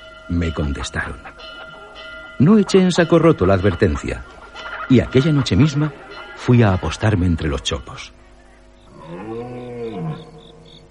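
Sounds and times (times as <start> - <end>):
speech: 0.3 - 1.6, 2.4 - 8.2
red deer stag bellowing: 8.9 - 10.8.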